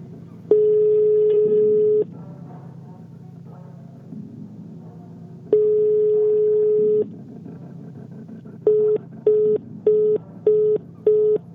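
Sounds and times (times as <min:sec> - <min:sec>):
long steady tones of a failed mobile phone call: 0:00.5 - 0:02.1, 0:05.6 - 0:07.1, 0:08.7 - 0:11.5.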